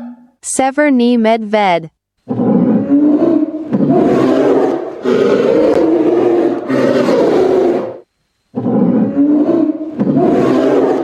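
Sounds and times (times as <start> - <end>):
speech: 0.6 - 2.6, 5.1 - 5.5
tiger roaring: 2.2 - 11.0.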